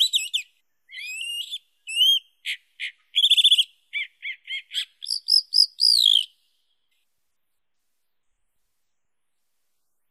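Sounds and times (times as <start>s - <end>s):
Chalk-browed mockingbird song: 0.0s - 7.1s.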